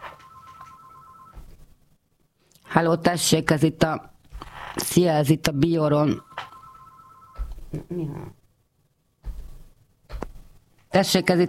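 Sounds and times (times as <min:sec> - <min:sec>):
telephone ringing: 0:00.0 - 0:01.6, 0:06.0 - 0:07.6
hiss: 0:00.0 - 0:11.4
speech: 0:02.8 - 0:04.1, 0:04.9 - 0:06.3, 0:07.7 - 0:08.4, 0:11.0 - 0:11.4.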